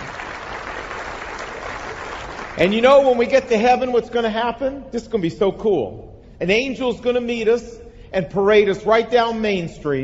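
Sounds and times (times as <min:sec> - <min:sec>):
audience applause: 0:00.0 - 0:02.8
speech: 0:02.6 - 0:10.0.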